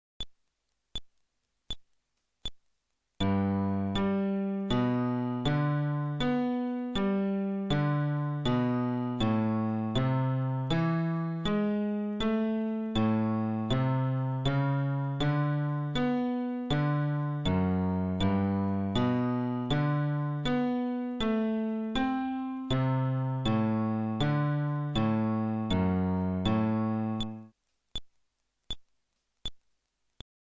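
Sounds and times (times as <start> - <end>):
fretless bass arpeggio at tempo 80: 3.2 - 6.5, 7.1 - 27.4.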